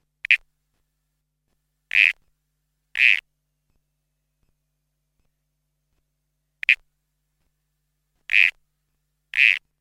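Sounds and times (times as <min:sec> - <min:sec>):
Pseudophryne bibronii Brown Toadlet calling: 0:00.2 - 0:00.4, 0:01.9 - 0:02.2, 0:03.0 - 0:03.2, 0:08.3 - 0:08.6, 0:09.3 - 0:09.6.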